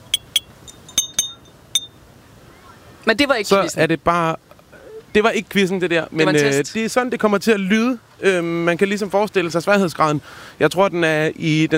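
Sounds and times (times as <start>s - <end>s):
teaspoon tapping glass bottles: 0.0s - 1.9s
speech: 3.1s - 4.4s, 5.2s - 11.7s.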